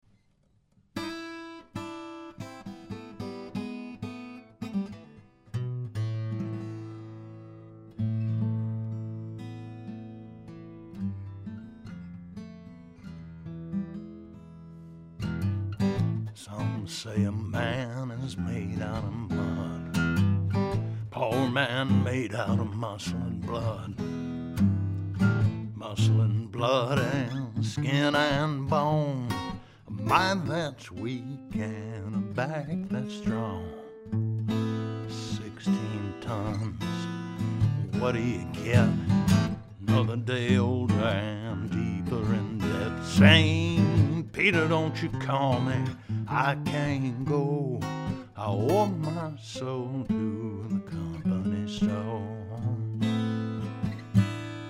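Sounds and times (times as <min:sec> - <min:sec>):
guitar miked with a KM84 around the 14th fret: 0:00.0 - 0:54.6
person singing into a U87 microphone: 0:16.4 - 0:20.1, 0:21.0 - 0:24.1, 0:25.8 - 0:34.1, 0:35.0 - 0:53.0.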